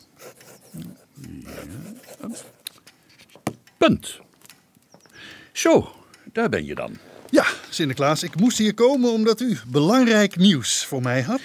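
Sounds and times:
low murmuring voice: 0.2 - 2.6
fountain pen scratching on paper: 0.2 - 2.7
sharp taps: 2.0 - 7.4
speech: 3.8 - 4.2, 5.6 - 11.4.

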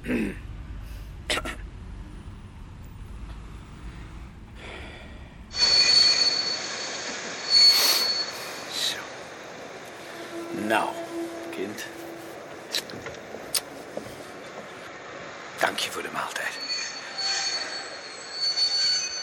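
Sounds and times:
train rumbling past: 0.4 - 19.2
train wheels squealing: 5.5 - 14.9, 15.6 - 19.2.

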